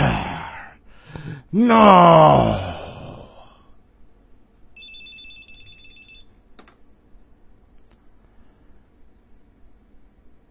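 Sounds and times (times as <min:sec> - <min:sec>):
speech: 0:01.5 - 0:02.7
cell phone alarm chiming with thin electronic tone: 0:04.8 - 0:06.3.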